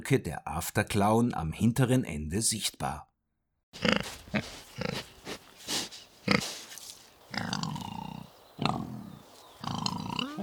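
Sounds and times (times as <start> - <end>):
speech: 0.0 - 3.1, 3.7 - 5.0
wild boars in the Marchfeld grunting and squealing: 3.8 - 10.4.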